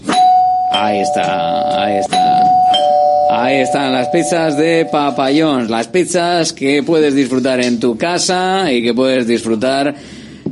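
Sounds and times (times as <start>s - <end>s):
electronic doorbell ringing: 0.0s - 5.3s
speech: 0.8s - 2.6s, 3.3s - 10.2s.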